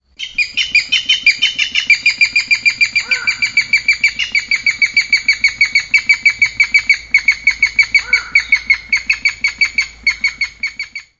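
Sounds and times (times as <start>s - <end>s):
Okinawa rail calling: 0.2s - 11.1s.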